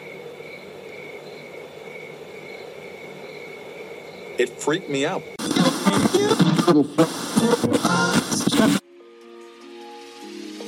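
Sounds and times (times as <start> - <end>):
crickets chirping on a quiet night: 0.0 - 5.4
speech: 4.4 - 8.8.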